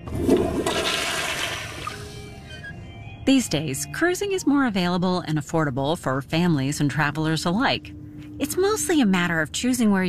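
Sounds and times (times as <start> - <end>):
toilet flushing: 0.0 - 2.3
speech: 3.3 - 10.0.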